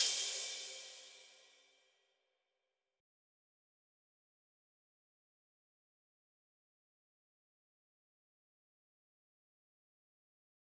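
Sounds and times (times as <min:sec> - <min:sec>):
drum loop with cymbal: 0:00.0 - 0:01.3.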